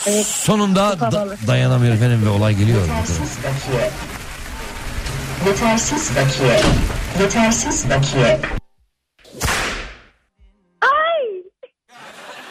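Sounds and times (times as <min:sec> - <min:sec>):
speech: 0:00.0 - 0:04.2, 0:05.4 - 0:08.6
busy overlapping chatter: 0:01.2 - 0:08.6
whip crack: 0:09.2 - 0:10.1
laughter: 0:11.9 - 0:12.4.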